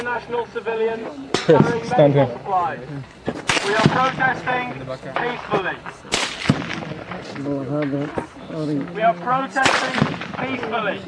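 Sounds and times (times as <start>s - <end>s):
speech: 0.0s - 11.0s
gunfire: 3.4s - 7.9s, 9.6s - 10.9s.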